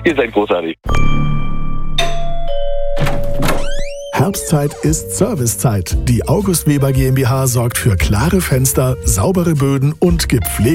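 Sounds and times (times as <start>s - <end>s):
speech: 0.0s - 1.3s, 4.2s - 10.7s
radio station gong two-part chime: 0.9s - 4.6s.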